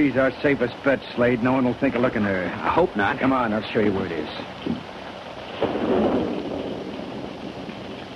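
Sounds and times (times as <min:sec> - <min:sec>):
speech: 0:00.0 - 0:04.9
steady rain hissing: 0:00.0 - 0:08.1
deep roll of thunder rumbling: 0:03.5 - 0:08.1.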